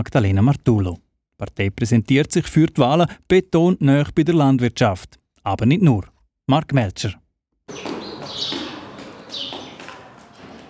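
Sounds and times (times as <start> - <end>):
speech: 0.0 - 7.9
nervous sparrows chirping in a cow barn: 7.7 - 10.6.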